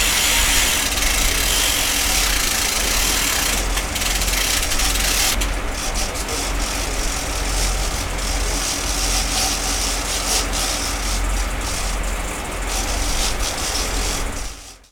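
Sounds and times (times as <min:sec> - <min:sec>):
fishing boat: 0:00.0 - 0:14.8.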